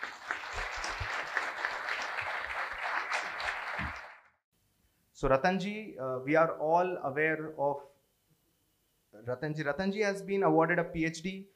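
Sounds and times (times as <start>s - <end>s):
crowd applauding a speaker: 0.0s - 4.4s
speech: 5.2s - 7.9s, 9.2s - 11.5s.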